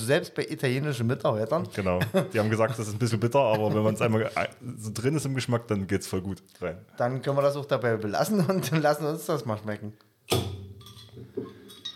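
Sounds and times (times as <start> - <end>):
speech: 0.0 - 10.6
laughter: 1.8 - 4.4
glasses clinking together for a toast: 10.8 - 11.9.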